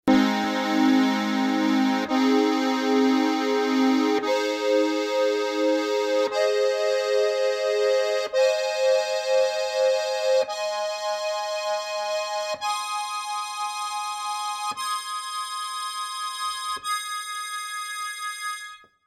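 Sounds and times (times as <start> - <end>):
B Es As Des chord on harmonica: 0.0 - 19.0.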